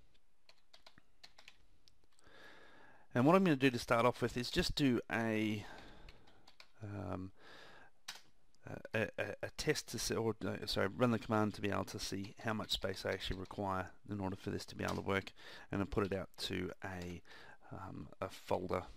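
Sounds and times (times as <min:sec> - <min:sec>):
rapid light computer keyboard typing: 0:00.0 - 0:02.2, 0:05.8 - 0:06.8
speech: 0:03.1 - 0:05.8, 0:06.8 - 0:07.6, 0:08.7 - 0:18.9.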